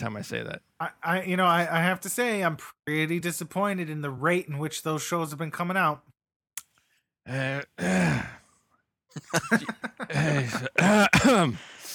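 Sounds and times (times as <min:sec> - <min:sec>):
speech: 0:00.0 - 0:06.1, 0:07.2 - 0:08.4, 0:09.2 - 0:11.7
laughter: 0:09.1 - 0:11.1
person making short voiced coughs: 0:09.6 - 0:11.7
person clearing throat: 0:10.4 - 0:11.6.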